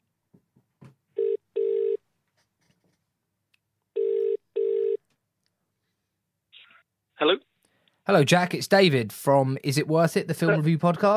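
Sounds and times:
telephone line ringing in double bursts: 1.2 - 2.0, 4.0 - 5.0
speech: 8.1 - 11.1.

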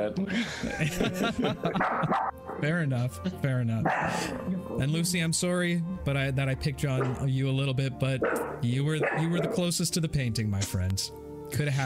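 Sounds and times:
speech: 0.0 - 11.8
laughter: 0.2 - 2.4
dog barking with high-pitched yips: 1.8 - 2.6, 3.8 - 4.3, 7.0 - 7.2, 8.2 - 9.6.

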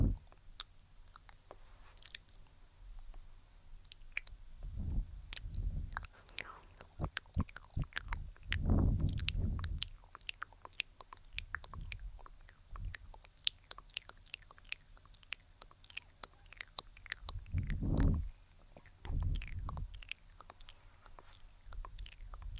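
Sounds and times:
wet mouth clicks, pops and smacks: 0.0 - 3.2, 3.8 - 22.5
soft low rubbing from face touching: 4.6 - 9.8, 17.3 - 19.9, 20.5 - 22.5.

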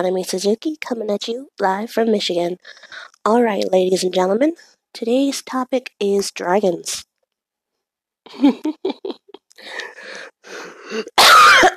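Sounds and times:
speech: 0.0 - 7.1, 8.3 - 11.7
laughter: 8.3 - 9.4
person coughing: 11.0 - 11.7.

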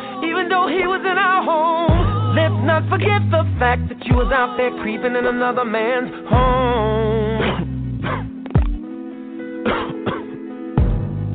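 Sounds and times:
speech: 0.4 - 7.3
shot man coughing in short rough bursts: 7.4 - 8.4, 9.6 - 10.4.

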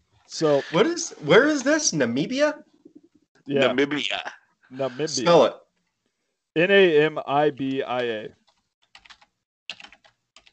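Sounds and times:
speech: 0.3 - 2.7, 3.5 - 5.6, 6.6 - 8.4
rapid clicky keystrokes on a mechanical keyboard: 8.8 - 10.5.

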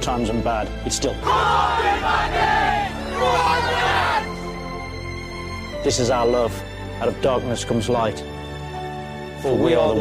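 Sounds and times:
speech: 0.0 - 2.6, 5.8 - 8.3, 9.4 - 10.0
football stadium crowd roaring and chanting: 1.2 - 4.4.

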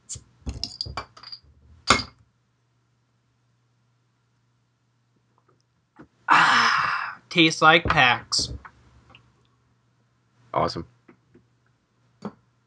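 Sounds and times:
glass bottle of IPA beer clinking and rattling while handled: 0.5 - 2.2
speech: 7.4 - 8.6, 10.6 - 11.0.

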